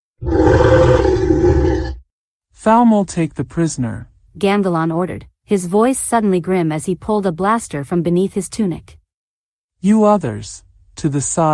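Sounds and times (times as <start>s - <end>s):
deep creature roar with growling texture in the jungle: 0.2s - 2.0s
speech: 2.6s - 9.0s, 9.8s - 11.5s.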